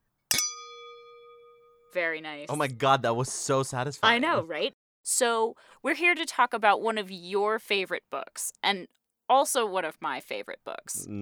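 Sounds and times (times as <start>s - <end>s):
glasses clinking in a toast: 0.3s - 1.9s
speech: 1.9s - 11.2s.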